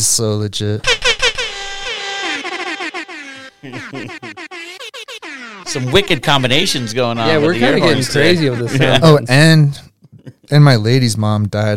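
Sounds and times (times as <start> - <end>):
speech: 0.0 - 1.0, 3.6 - 4.4, 5.7 - 11.7
air horn sound effect blaring: 0.8 - 8.2
laughter: 3.4 - 4.6, 5.7 - 9.4.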